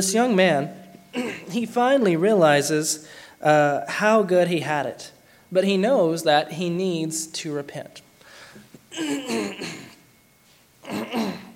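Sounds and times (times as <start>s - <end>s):
speech: 0.0s - 8.0s, 8.9s - 9.9s, 10.8s - 11.5s
man clearing throat: 1.1s - 1.6s, 8.8s - 10.0s, 10.8s - 11.5s
man coughing: 1.1s - 1.6s, 8.8s - 10.0s, 10.8s - 11.5s.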